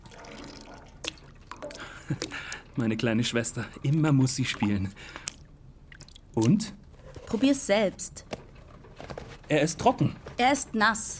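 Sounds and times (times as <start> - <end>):
water dripping during a test of whether something holds water: 0.0 - 6.8
speech: 2.1 - 5.2, 6.4 - 8.3, 9.5 - 11.1.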